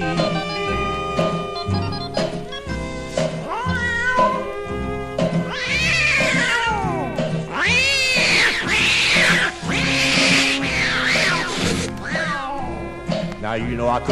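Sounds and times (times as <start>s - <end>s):
musical backing: 0.0s - 14.1s
tomcats caterwauling in a fight: 3.4s - 13.3s
speech: 13.6s - 14.1s.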